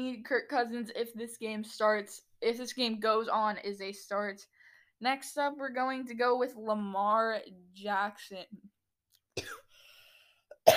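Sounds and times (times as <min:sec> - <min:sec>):
speech: 0:00.0 - 0:08.7
person coughing: 0:09.4 - 0:09.7, 0:10.5 - 0:10.7.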